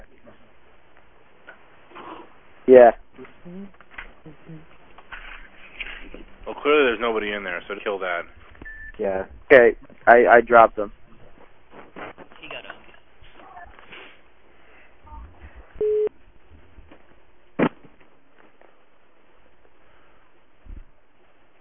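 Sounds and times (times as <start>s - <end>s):
speech: 2.7s - 4.7s, 6.6s - 8.4s, 9.0s - 11.0s
phone beep tone while dialing out: 15.8s - 16.1s
telephone line noise: 15.8s - 16.1s.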